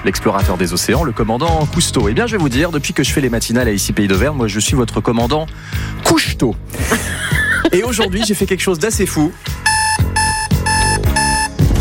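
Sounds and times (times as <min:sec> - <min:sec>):
speech: 0:00.0 - 0:10.1
laughter: 0:06.7 - 0:08.6
alarm clock ringing with a harsh electronic buzz: 0:09.6 - 0:11.7.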